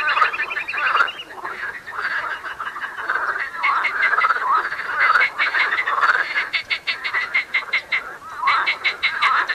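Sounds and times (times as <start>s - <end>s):
marsh frogs croaking in a dense chorus in the Tävsmoor: 0.0s - 9.5s.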